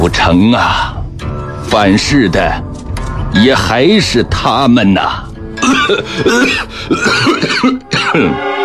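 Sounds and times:
speech: 0:00.1 - 0:01.0, 0:01.7 - 0:02.7, 0:03.3 - 0:08.5
person coughing harshly after choking on something: 0:05.6 - 0:08.4.

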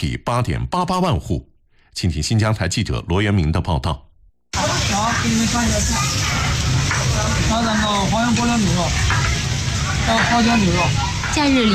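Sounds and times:
speech: 0:00.0 - 0:04.6, 0:05.2 - 0:06.5, 0:10.1 - 0:11.7
meat slices sizzling on a hot grill pan at a barbecue restaurant in Urumqi: 0:04.6 - 0:11.7.

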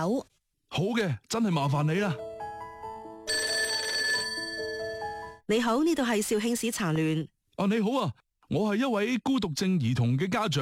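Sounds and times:
speech: 0:00.0 - 0:02.3, 0:05.5 - 0:10.6
telephone bell ringing as a call is placed to a disability federation office: 0:03.2 - 0:05.4.

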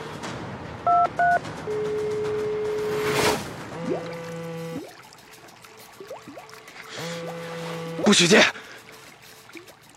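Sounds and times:
telephone keypad tones: 0:00.9 - 0:02.5
speech: 0:08.1 - 0:08.6.

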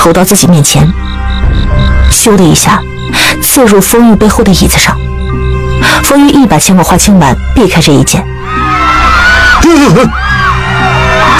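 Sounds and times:
speech: 0:00.0 - 0:10.4
crowd screaming and yelling: 0:08.4 - 0:11.3.

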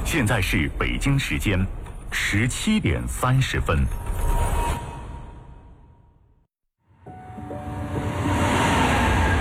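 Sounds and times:
speech: 0:00.1 - 0:04.3
subway train roaring past with faint metallic whines: 0:07.1 - 0:09.4.

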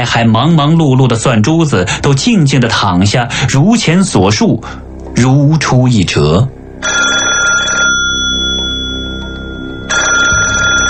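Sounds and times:
speech: 0:00.0 - 0:07.0
telephone bell ringing: 0:06.8 - 0:10.8.

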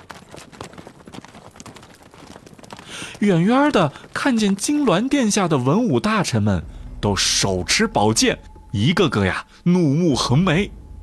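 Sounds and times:
horse hooves clip-clopping pulling a luxurious carriage: 0:00.0 - 0:06.4
speech: 0:03.2 - 0:10.8.

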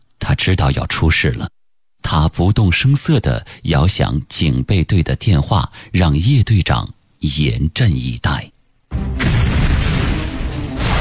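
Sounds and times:
speech: 0:00.4 - 0:09.2
distant artillery fire rumbling at dawn in a wartime attack: 0:09.2 - 0:10.9
gunshots: 0:09.2 - 0:10.9.

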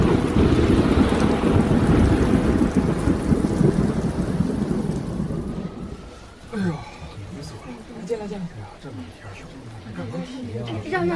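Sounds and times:
typhoon wind roaring: 0:00.0 - 0:08.0
heavy rain in a typhoon: 0:00.0 - 0:11.1.

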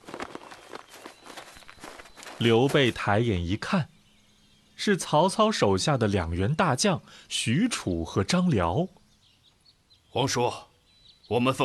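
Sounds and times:
hurried footsteps of people arriving at a small vegetable garden: 0:00.0 - 0:03.1
speech: 0:02.4 - 0:03.9, 0:04.8 - 0:09.0, 0:10.1 - 0:10.7, 0:11.3 - 0:11.6.

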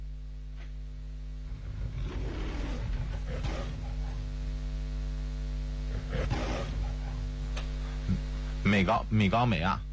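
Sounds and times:
steady low electrical hum: 0:00.0 - 0:09.9
lion roaring in a film studio intro: 0:01.5 - 0:04.2, 0:05.9 - 0:07.3
speech: 0:08.7 - 0:09.9.

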